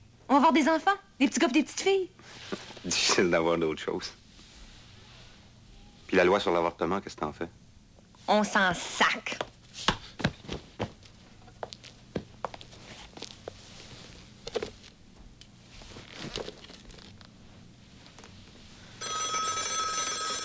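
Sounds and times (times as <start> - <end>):
speech: 0.5 - 4.2, 6.1 - 7.6, 8.3 - 9.9
telephone ringing with a trilling bell: 19.0 - 20.4.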